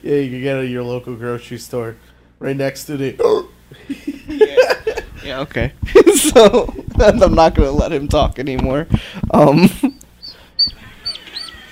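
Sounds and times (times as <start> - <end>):
speech: 0.1 - 4.7, 5.3 - 9.9
laughter: 3.8 - 5.2, 5.9 - 6.9, 10.7 - 11.7
ducklings peeping: 9.0 - 11.7.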